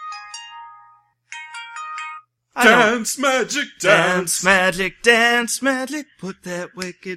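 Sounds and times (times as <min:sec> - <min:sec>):
phone ringtone with electronic melodic phrases: 0:00.0 - 0:02.9
speech: 0:02.6 - 0:07.1.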